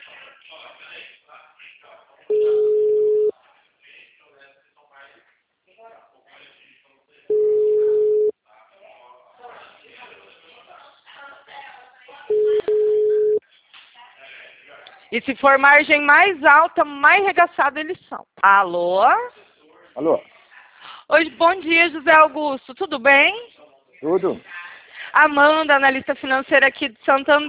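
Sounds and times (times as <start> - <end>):
ringback tone beeps on a phone line while a call is placed: 2.3 - 3.3, 7.3 - 8.3, 12.3 - 13.4
speech: 15.2 - 19.4, 20.0 - 20.3, 21.1 - 24.5, 25.2 - 27.4.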